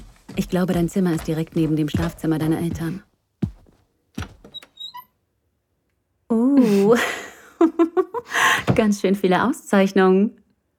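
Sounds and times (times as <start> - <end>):
speech: 0.4 - 3.1, 6.9 - 7.2, 8.2 - 10.4
bedroom door opening: 4.2 - 5.2
bedroom door hinge squeak: 4.4 - 5.2.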